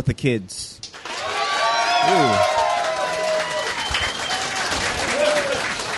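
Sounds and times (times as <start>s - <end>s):
speech: 0.0s - 1.0s, 2.0s - 2.6s
large crowd clapping: 0.8s - 5.9s
whoops and shouted cheers: 1.1s - 5.7s.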